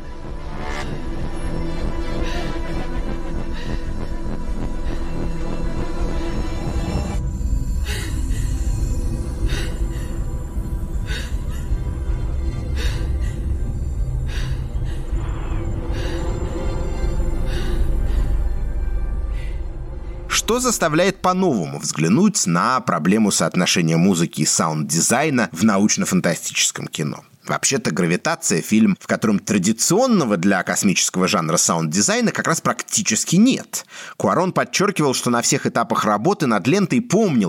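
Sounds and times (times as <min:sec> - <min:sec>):
dense loud low rumble: 0:00.0 - 0:21.7
woman breathing raggedly inside a spacesuit helmet: 0:00.8 - 0:20.3
speech: 0:20.5 - 0:37.4.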